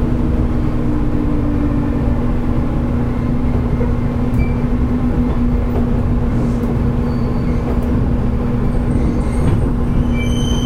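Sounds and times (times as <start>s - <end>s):
JR Kyushu 811 series local electric train running on the Kagoshima line: 0.0s - 10.6s
faint high train squeals: 6.5s - 7.8s, 8.8s - 10.6s.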